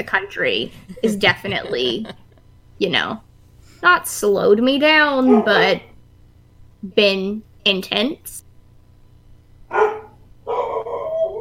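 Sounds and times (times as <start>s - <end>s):
speech: 0.0s - 2.2s, 2.8s - 5.9s, 6.8s - 8.4s, 9.7s - 9.9s
laughter: 0.6s - 2.4s
big dogs barking: 5.2s - 5.6s, 9.7s - 11.4s.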